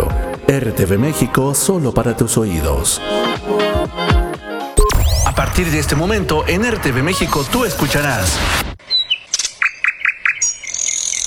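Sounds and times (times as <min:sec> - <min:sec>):
speech: 0:00.5 - 0:04.2, 0:05.4 - 0:08.7
mockingbird high sustained buzzy trill: 0:04.8 - 0:07.6
mockingbirds singing: 0:08.8 - 0:11.2.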